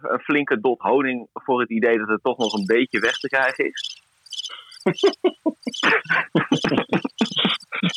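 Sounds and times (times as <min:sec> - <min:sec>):
speech: 0:00.3 - 0:03.9, 0:04.8 - 0:07.9
crickets chirping: 0:02.4 - 0:07.9
laughter: 0:04.5 - 0:07.9.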